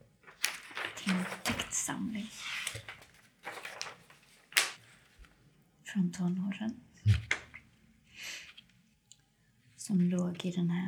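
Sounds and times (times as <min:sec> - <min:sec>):
sheet of paper rustling and crinkling: 0:00.2 - 0:05.4
crisp flick or snap of a paper sheet: 0:00.3 - 0:01.8, 0:02.6 - 0:04.8
speech: 0:01.9 - 0:03.0, 0:06.0 - 0:07.2, 0:09.9 - 0:10.8.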